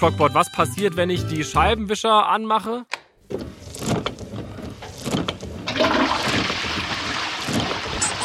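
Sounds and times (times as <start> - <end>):
speech: 0.0 - 3.5
toilet flushing: 5.6 - 8.2.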